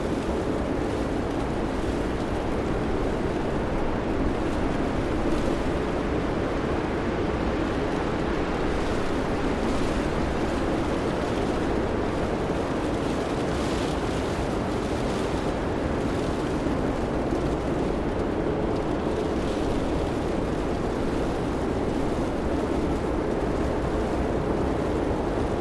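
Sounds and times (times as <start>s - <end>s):
blizzard wind roaring outside: 0.0s - 25.5s.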